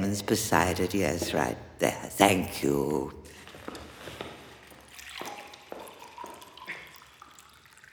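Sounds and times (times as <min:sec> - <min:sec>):
speech: 0:00.1 - 0:03.3
water pouring from a pitcher into a glass: 0:03.3 - 0:07.9.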